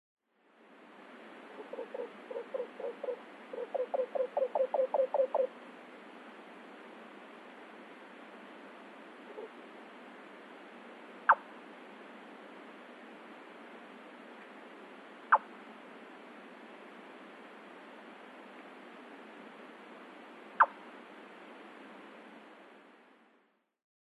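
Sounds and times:
nightjar in Nikko: 1.5s - 5.6s, 11.3s - 11.5s, 20.6s - 20.9s.

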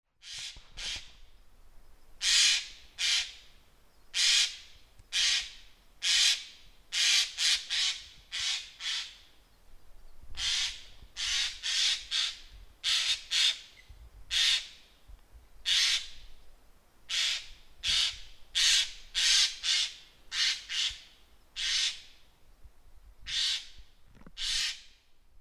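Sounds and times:
Eurasian jay calling in Wakayama: 2.2s - 3.4s, 4.1s - 9.2s, 10.4s - 14.8s, 15.6s - 16.2s, 17.1s - 22.1s, 23.3s - 23.8s, 24.4s - 24.9s.

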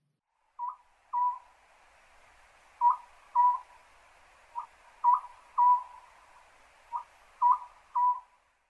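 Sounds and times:
soft even hiss: 0.0s - 8.6s
Eurasian scops owl hooting: 2.8s - 3.8s, 4.6s - 6.2s, 6.9s - 8.3s.

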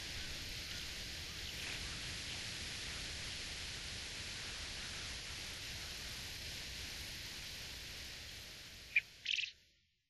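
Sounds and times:
steady hissing background noise: 0.0s - 10.0s
Japanese quail call: 9.0s - 9.5s.

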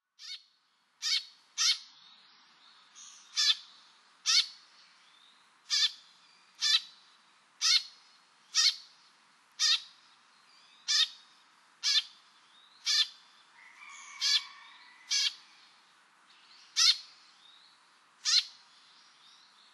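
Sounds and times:
Eurasian tree sparrow chirping in Utsunomiya: 0.2s - 0.4s, 1.0s - 8.9s, 9.6s - 13.3s, 16.4s - 17.6s, 18.2s - 19.6s.

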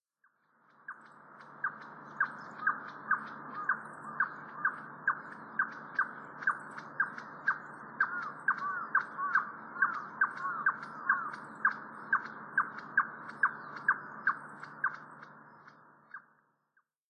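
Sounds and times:
Ruddy-breasted Crake calling: 1.6s - 15.2s.

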